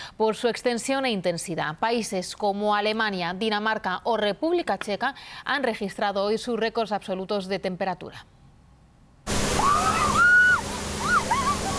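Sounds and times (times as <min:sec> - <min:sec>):
speech: 0:00.2 - 0:08.4
police water cannon spraying water: 0:09.3 - 0:11.7
faint high-pitched squeals or shouts: 0:09.6 - 0:11.7.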